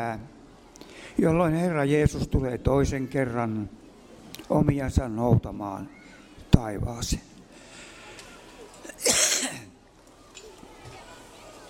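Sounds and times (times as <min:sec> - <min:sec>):
speech: 0:00.0 - 0:00.4, 0:01.2 - 0:03.8, 0:04.4 - 0:06.0, 0:06.6 - 0:07.3
throat clearing: 0:08.8 - 0:09.7
person coughing: 0:08.9 - 0:09.7.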